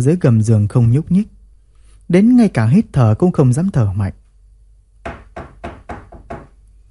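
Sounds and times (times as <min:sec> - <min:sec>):
speech: 0:00.0 - 0:01.4, 0:02.1 - 0:04.2
dull heavy knocking on a locked door: 0:05.0 - 0:06.6.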